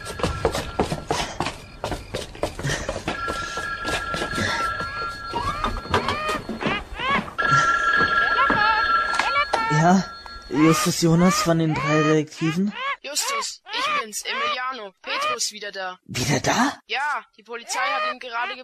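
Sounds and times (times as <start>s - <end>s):
clattering and knocking: 0.0s - 9.7s
telephone ringing: 3.1s - 11.8s
speech: 9.8s - 12.8s, 14.1s - 18.6s.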